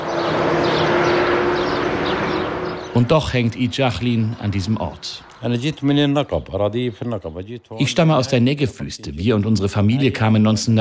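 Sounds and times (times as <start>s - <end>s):
dense road traffic roar: 0.0s - 7.3s
speech: 3.0s - 10.7s.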